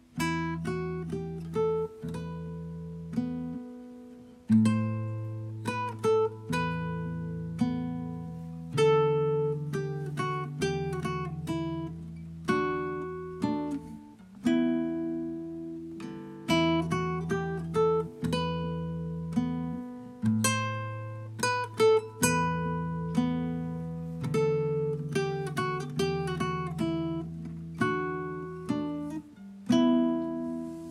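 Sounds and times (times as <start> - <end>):
slow Spanish guitar: 0.0 - 30.9.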